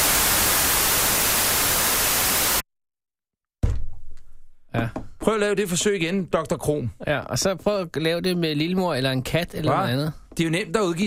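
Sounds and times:
harsh broadband white noise hiss: 0.0s - 2.6s
speech: 4.8s - 11.0s.

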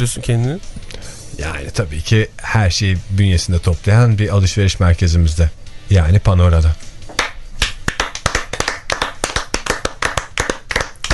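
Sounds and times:
speech: 0.0s - 6.9s
sparse applause from a few hands: 7.9s - 11.1s.

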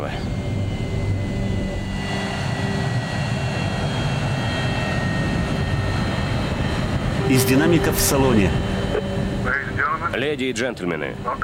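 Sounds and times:
airliner engines roaring while landing at Bangor and rolling to a stop: 0.0s - 11.4s
speech: 7.3s - 8.7s, 10.1s - 11.4s.

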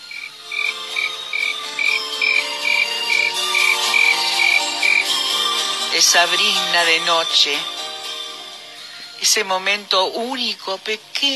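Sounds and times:
cricket chirping at night: 0.0s - 5.2s
speech: 6.0s - 7.8s, 9.2s - 11.3s.

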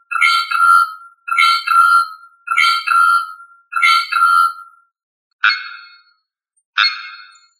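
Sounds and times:
bird singing ringing two-part phrase: 0.0s - 4.8s.

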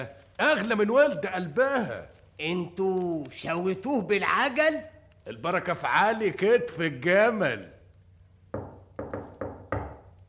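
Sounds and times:
speech: 0.0s - 7.8s
faint hollow knocking on a door: 8.5s - 10.2s.

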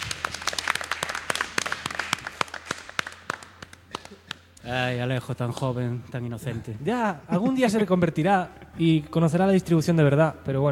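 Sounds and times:
sparse applause from a small group: 0.0s - 4.4s
speech: 4.6s - 10.6s.

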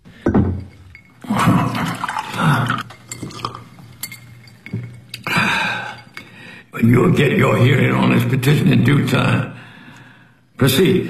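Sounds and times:
glassy clinks: 0.1s - 6.6s
liquid splashing: 0.5s - 6.6s
water poured into a glass in a courtroom: 0.5s - 6.6s
speech: 6.8s - 9.5s, 10.6s - 11.0s.

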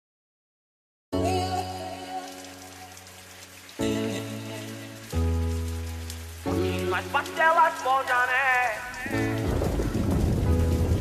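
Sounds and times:
rain falling steadily outside: 1.2s - 10.9s
speech: 7.0s - 9.3s.

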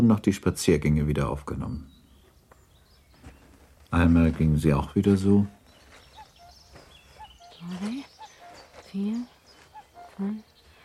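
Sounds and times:
speech: 0.0s - 2.0s, 3.9s - 5.6s, 7.6s - 8.1s, 8.9s - 9.4s, 10.2s - 10.5s
cuckoo calling in spring parkland: 4.9s - 10.8s.

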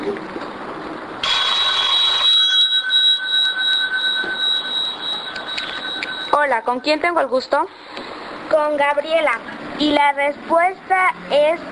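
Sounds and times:
telephone ringing with an incoming call on a radio quiz show: 1.2s - 7.1s
speech: 6.6s - 11.7s.

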